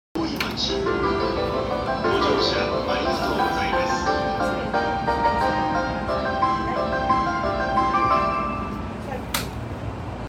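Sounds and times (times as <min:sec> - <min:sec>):
train sounds on the JR Keihin-Tohoku Line north of Shinagawa: 0:00.2 - 0:10.2.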